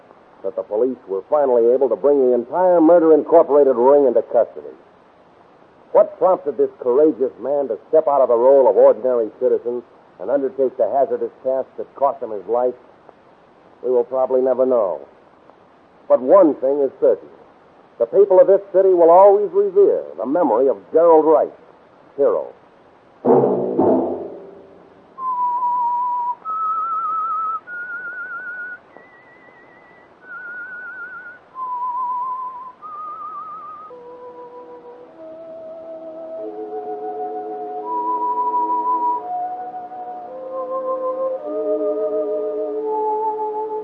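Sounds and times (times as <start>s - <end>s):
speech: 0.4s - 4.9s, 5.9s - 12.9s, 13.8s - 15.1s, 16.1s - 17.4s, 18.0s - 21.6s, 22.2s - 22.6s
fuller musical accompaniment: 23.2s - 43.8s
slow eerie whistled melody of long held notes: 25.2s - 43.8s.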